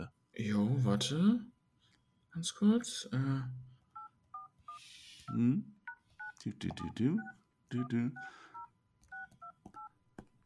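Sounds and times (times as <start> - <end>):
speech: 0.4 - 1.5, 2.4 - 3.7, 4.8 - 5.8, 6.4 - 8.5
phone keypad two-tone dialing beeps: 4.0 - 9.9.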